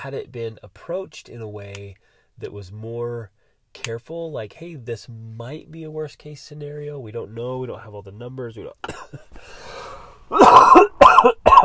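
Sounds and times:
speech: 0.0 - 11.6
person clearing throat: 8.8 - 9.3, 10.3 - 11.6
person with a lingering cough coughing: 8.8 - 9.3, 10.3 - 11.6.

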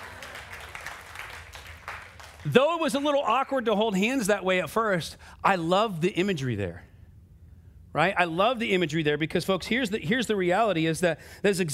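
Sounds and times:
crowd applauding: 0.0 - 2.6
speech: 2.4 - 6.9, 7.9 - 11.7.

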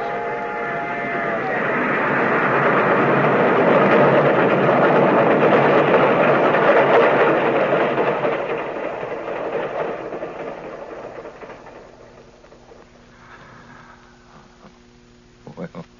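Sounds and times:
train bell: 0.0 - 2.2
train whistle: 0.0 - 3.6
train rumbling past with rolling wheels and engine: 0.0 - 14.6.

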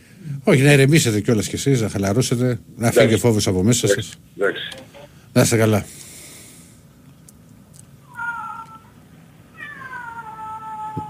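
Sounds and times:
speech: 0.5 - 6.0
cat meowing: 8.1 - 8.9, 9.6 - 11.0.

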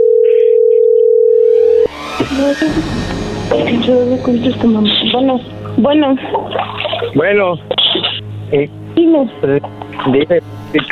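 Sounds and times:
telephone dial tone while a call is placed: 0.0 - 1.6
speech: 2.4 - 7.8, 8.5 - 10.9.

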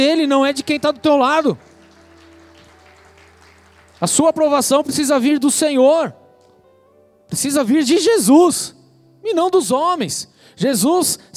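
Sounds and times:
speech: 0.0 - 1.7, 4.0 - 6.2, 7.3 - 11.3
audience clapping: 0.5 - 4.7.

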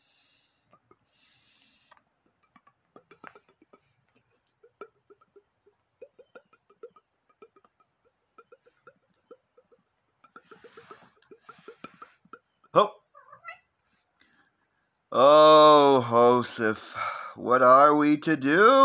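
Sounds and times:
speech: 12.7 - 13.0, 15.2 - 18.8
cat meowing: 13.1 - 13.7.

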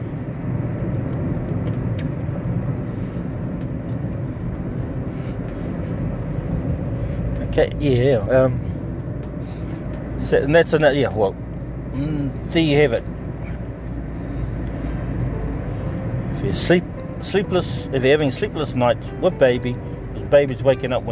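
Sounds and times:
car engine and road rumble inside a moving car in heavy traffic: 0.0 - 21.1
speech: 7.6 - 8.8, 10.3 - 11.4, 12.0 - 13.1, 16.4 - 21.1.

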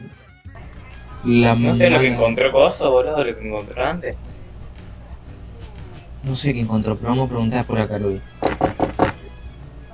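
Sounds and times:
speech: 1.2 - 4.3, 6.3 - 8.8
knocking on a door: 8.4 - 9.3.

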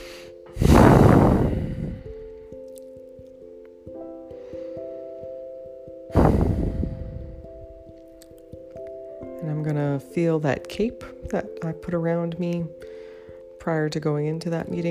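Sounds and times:
deep breaths by someone sitting to calm down after a meeting: 0.0 - 2.5, 4.3 - 5.5, 6.1 - 7.8, 12.8 - 13.5
speech: 10.2 - 12.8, 13.6 - 14.8.

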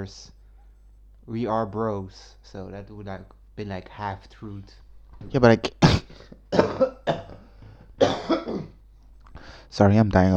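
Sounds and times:
speech: 0.0 - 0.4, 1.3 - 7.2, 9.7 - 10.3
person coughing: 5.6 - 8.8.

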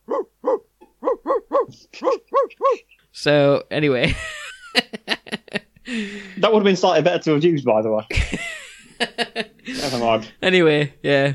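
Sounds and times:
person barking like a dog: 0.0 - 2.9
speech: 3.2 - 4.9, 6.4 - 8.5, 10.0 - 11.3
laughter: 4.0 - 6.3, 8.1 - 10.0.

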